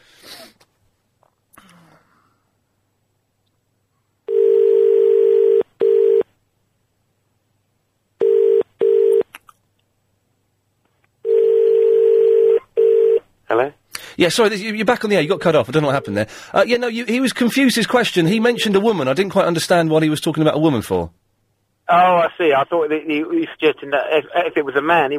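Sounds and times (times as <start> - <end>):
telephone dial tone after a caller to a radio phone-in hangs up: 4.3 - 6.2, 8.2 - 9.2, 11.2 - 13.2
speech: 13.6 - 21.2, 21.9 - 25.1.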